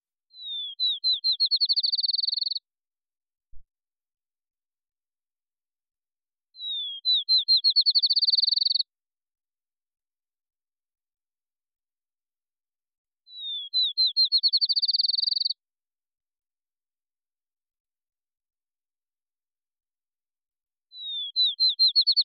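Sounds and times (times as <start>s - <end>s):
field sparrow: 0.2s - 2.7s, 6.5s - 9.0s, 13.2s - 15.6s, 20.9s - 22.2s.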